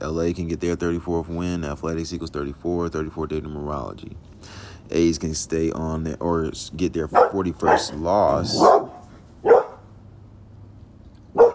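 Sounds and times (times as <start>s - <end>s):
speech: 0.0s - 8.8s
quiet hum: 0.0s - 11.5s
dog barking: 7.1s - 9.9s, 11.3s - 11.5s.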